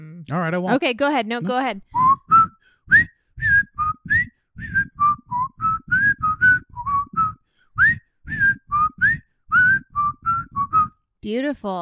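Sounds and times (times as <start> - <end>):
speech: 0.2 - 2.0, 11.2 - 11.8
person whistling a bouncy melodic tune: 1.9 - 11.0.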